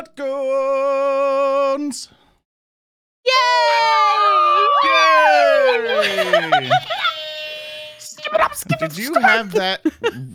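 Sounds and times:
speech: 0.1s - 1.2s, 1.8s - 2.2s, 5.8s - 7.0s, 8.3s - 10.3s
canned crowd cheering from a hype button: 3.3s - 8.2s
laughter: 4.4s - 7.2s, 9.0s - 10.3s.

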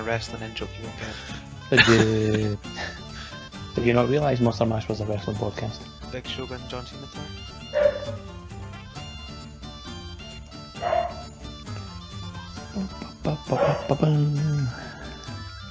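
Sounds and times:
speech: 0.0s - 3.0s, 3.8s - 8.2s, 13.5s - 14.9s
laughter: 1.0s - 3.2s
dog barking and yipping: 7.7s - 8.3s, 10.7s - 11.4s, 13.5s - 14.1s.

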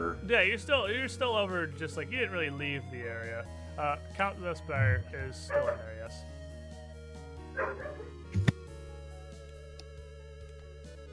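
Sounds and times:
speech: 0.3s - 6.4s, 7.6s - 8.4s
dog barking angrily: 5.5s - 5.9s, 7.6s - 8.2s.

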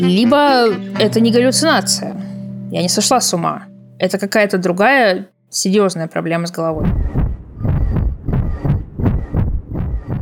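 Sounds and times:
speech: 0.0s - 7.7s
recreated heartbeat-like whooshing pulse imitating blood pounding in the head: 6.8s - 10.2s.

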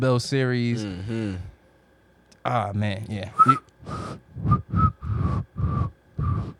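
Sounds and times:
speech: 0.0s - 1.5s, 2.4s - 4.6s
person attempting to whistle with breathy puffs of air: 3.4s - 6.5s.

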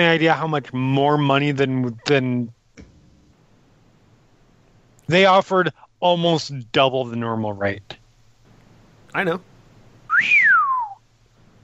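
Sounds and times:
speech: 0.0s - 2.6s, 5.1s - 8.0s, 9.1s - 9.5s, 10.2s - 10.5s
man whistling: 10.1s - 11.0s.

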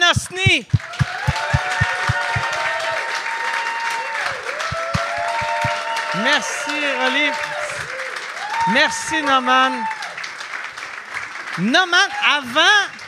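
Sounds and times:
audience applauding: 0.0s - 13.0s
speech: 0.6s - 1.0s, 6.3s - 7.5s, 8.7s - 10.0s, 11.6s - 12.9s
whoops and cheering voices: 0.8s - 10.2s.

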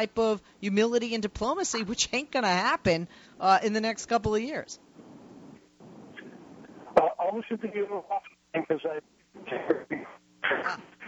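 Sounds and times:
speech: 0.0s - 4.8s, 7.3s - 10.9s
voice over a phone line breaking up: 7.0s - 11.0s.

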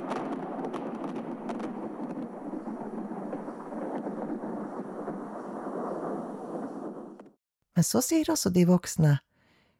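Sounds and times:
thunder rumbling: 0.0s - 7.4s
speech: 7.8s - 9.2s.

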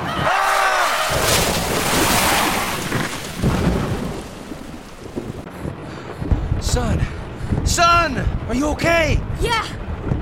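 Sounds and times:
heavy rain of a storm: 0.1s - 10.2s
deep rumbles of storm thunder: 0.2s - 10.2s
loud thunder crack: 0.7s - 8.5s
speech: 8.1s - 9.8s.

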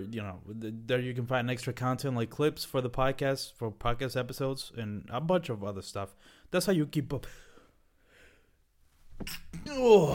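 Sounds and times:
speech: 0.0s - 7.5s, 9.2s - 10.1s
person sneezing: 9.1s - 10.1s.

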